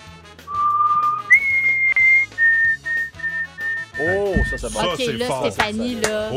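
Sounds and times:
woman whistling a melody over the phone: 0:00.5 - 0:04.0
speech: 0:04.0 - 0:06.3.

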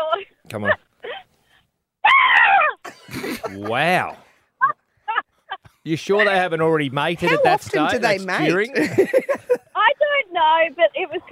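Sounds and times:
speech: 0:00.5 - 0:00.8, 0:03.5 - 0:04.2, 0:05.8 - 0:09.4, 0:10.4 - 0:11.3
person imitating a high-pitched scream like a screaming child: 0:02.0 - 0:02.8
laughter: 0:02.9 - 0:06.5, 0:07.2 - 0:09.8.

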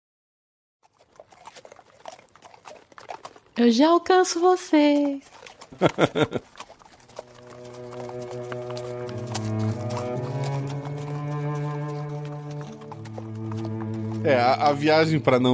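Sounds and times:
horse hooves clip-clopping as riders travel on horseback: 0:00.8 - 0:15.5
speech: 0:03.6 - 0:06.5, 0:14.3 - 0:15.5
laughter: 0:05.7 - 0:06.5
loud sustained droning tones: 0:07.1 - 0:15.2.

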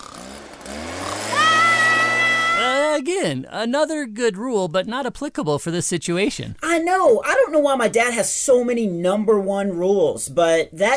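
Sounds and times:
leaf blower two-stroke engine running: 0:00.0 - 0:03.0
speech: 0:03.2 - 0:10.9.

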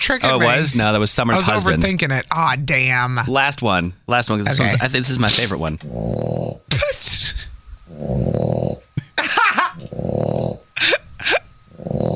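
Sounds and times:
speech: 0:00.0 - 0:08.9
dog snoring with whistling snorts and wheezy breaths: 0:05.8 - 0:06.7, 0:07.9 - 0:09.0, 0:09.8 - 0:10.7, 0:11.7 - 0:12.1.

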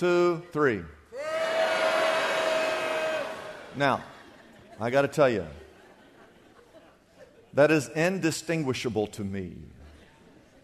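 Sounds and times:
speech: 0:00.0 - 0:01.0, 0:03.7 - 0:04.2, 0:04.8 - 0:05.6, 0:07.6 - 0:09.8
large crowd calling out their names drawn out: 0:01.1 - 0:03.8
laughter: 0:03.4 - 0:07.6.

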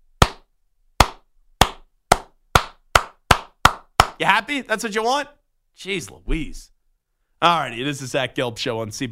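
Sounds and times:
single person slow clapping: 0:00.2 - 0:04.2
speech: 0:04.2 - 0:06.7, 0:07.4 - 0:09.0.

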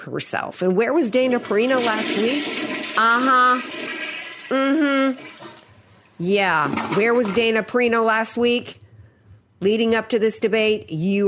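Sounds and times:
speech: 0:00.0 - 0:03.9, 0:04.5 - 0:05.3, 0:06.2 - 0:08.8, 0:09.6 - 0:11.2
toilet flushing: 0:01.0 - 0:07.7.

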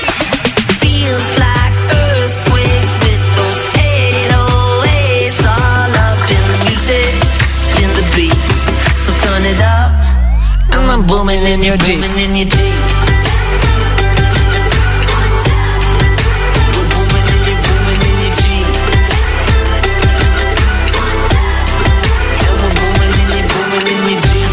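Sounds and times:
upbeat pop song with heavy bass and sung vocals played from a recording: 0:00.0 - 0:24.5
speech: 0:11.6 - 0:12.7.

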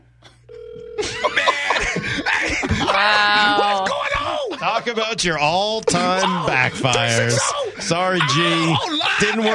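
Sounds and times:
telephone call ringing unanswered: 0:00.5 - 0:01.4
laughter: 0:01.0 - 0:09.5
speech: 0:04.9 - 0:09.5.

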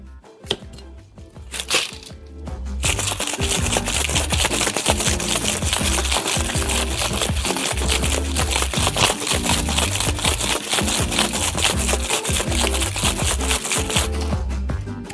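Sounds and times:
ice rattling inside a cocktail shaker shaken vigorously: 0:01.5 - 0:02.1, 0:02.8 - 0:14.3.

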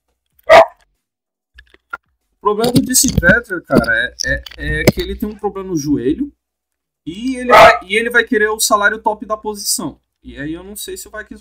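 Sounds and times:
dog barking: 0:00.4 - 0:00.8, 0:07.5 - 0:07.9
speech: 0:02.4 - 0:06.4, 0:07.0 - 0:11.3.

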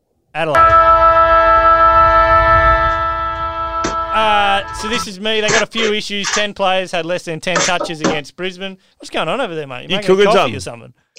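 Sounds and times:
speech: 0:00.4 - 0:01.1, 0:04.6 - 0:11.1
siren sting opening a segment: 0:00.6 - 0:05.9.

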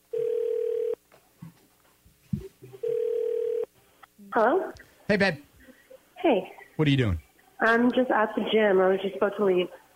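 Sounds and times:
ringback tones from an outgoing phone call: 0:00.1 - 0:01.0, 0:02.8 - 0:03.7
speech: 0:04.4 - 0:05.5, 0:06.2 - 0:09.8.

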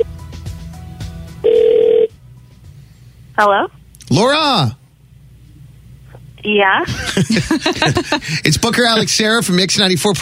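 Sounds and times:
low hum: 0:00.0 - 0:10.1
phone ringback tone heard through the line: 0:01.4 - 0:02.1
speech: 0:03.4 - 0:04.8, 0:06.4 - 0:10.1
laughter: 0:06.9 - 0:09.3.

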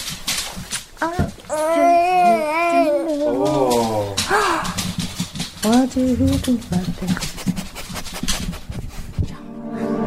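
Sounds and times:
faint noise: 0:00.0 - 0:09.4
speech: 0:01.0 - 0:01.3, 0:05.9 - 0:07.5
baby fussing and crying: 0:01.5 - 0:03.4.

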